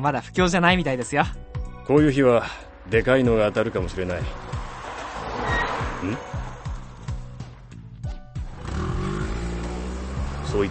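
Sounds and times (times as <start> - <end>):
speech: 0.0 - 4.6, 6.0 - 6.4
car engine revving as the car turns around suddenly: 2.8 - 7.8, 8.4 - 10.6.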